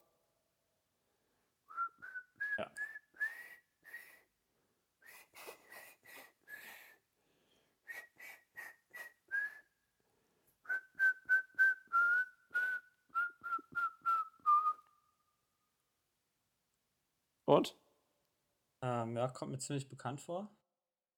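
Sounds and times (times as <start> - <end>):
person whistling a song melody: 1.7 - 4.2, 7.9 - 9.8, 10.7 - 15.0
speech: 17.5 - 17.8, 19.0 - 20.6.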